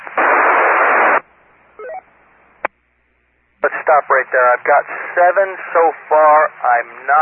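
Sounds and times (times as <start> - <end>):
radio repeater squelch tail static hiss: 0.0 - 1.3, 3.6 - 7.2
rising electronic beep sequence: 1.8 - 2.1
speech: 3.9 - 7.2.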